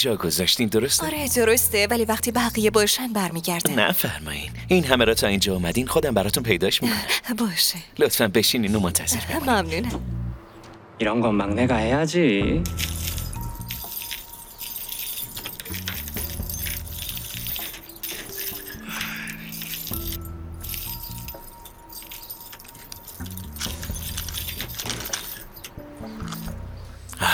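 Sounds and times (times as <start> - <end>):
speech: 0.0 - 10.2, 11.0 - 13.0
big bunch of keys jangling: 12.7 - 26.8.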